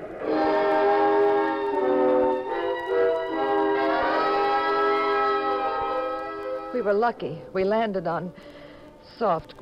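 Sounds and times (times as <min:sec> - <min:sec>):
train horn blaring with rich harmonic tones: 0:00.2 - 0:06.8
speech: 0:06.8 - 0:09.6.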